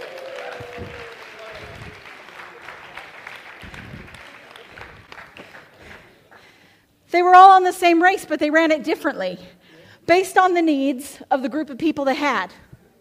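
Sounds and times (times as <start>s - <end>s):
murmuring voices: 0.0s - 6.4s
audience applause: 0.0s - 6.5s
speech: 7.1s - 12.6s.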